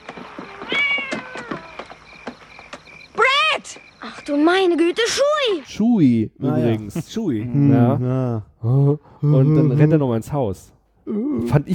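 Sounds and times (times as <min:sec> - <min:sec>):
cat meowing: 0:00.4 - 0:01.9
speech: 0:04.3 - 0:11.7.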